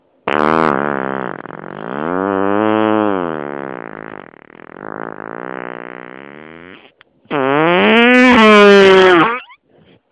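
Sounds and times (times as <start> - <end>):
fart: 0.2 - 10.0.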